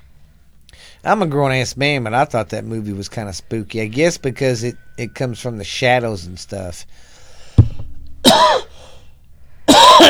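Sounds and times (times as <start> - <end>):
speech: 1.0 - 7.1
microphone accidentally hit with a sharp thump: 7.6 - 8.6
loud raspy coughs: 8.2 - 9.0, 9.7 - 10.0.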